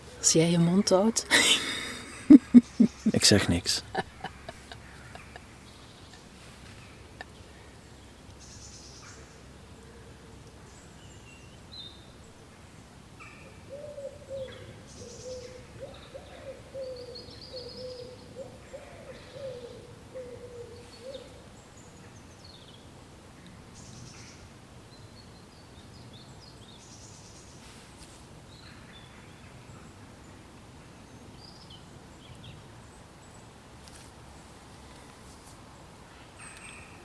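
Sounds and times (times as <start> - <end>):
soft hiss: 0.0 - 37.0
speech: 0.2 - 1.6, 3.2 - 4.1
laughter: 1.3 - 6.3
bird low hooting or cooing outdoors: 13.6 - 21.4.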